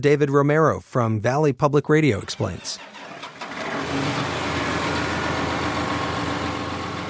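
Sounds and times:
speech: 0.0s - 2.9s, 3.9s - 4.3s
heavy tractor engine idling: 2.2s - 7.0s.

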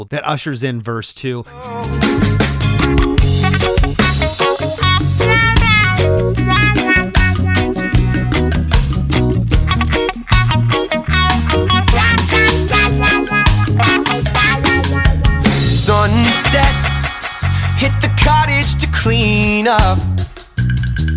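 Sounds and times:
speech: 0.0s - 2.4s, 17.8s - 20.2s
singer singing over a rock band: 1.5s - 3.0s, 5.2s - 8.2s, 12.0s - 20.2s
electric guitar with tremolo effect: 1.6s - 20.2s
loud dense rock band playing: 1.6s - 21.1s.

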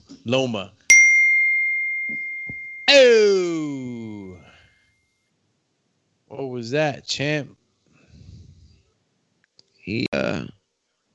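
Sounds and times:
speech: 0.2s - 0.8s, 2.9s - 4.4s, 6.3s - 7.6s, 9.9s - 10.6s
coin-collect chime: 0.9s - 4.3s.

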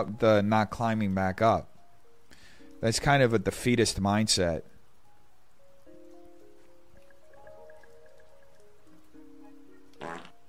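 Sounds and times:
speech: 0.0s - 1.7s, 2.8s - 4.7s
buzzy drawn-out fart noise with wavering pitch: 10.0s - 10.4s.

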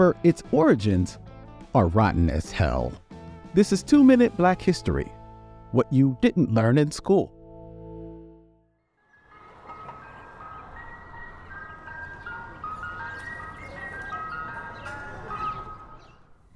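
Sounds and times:
speech: 0.0s - 3.0s, 3.6s - 7.4s
ice cream truck jingle with music-box melody: 9.1s - 16.3s.

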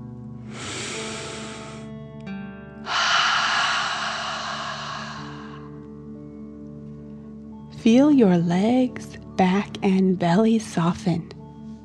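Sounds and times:
deep inhale through the nose and forceful exhale in a breathing exercise: 0.4s - 2.0s, 2.8s - 5.9s
speech: 7.8s - 11.3s.

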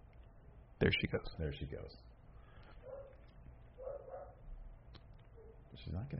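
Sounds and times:
low hum: 0.0s - 6.1s
speech: 0.8s - 2.2s, 5.8s - 6.1s
dog barking in short bursts: 2.8s - 3.2s, 3.8s - 4.4s, 5.4s - 5.6s.

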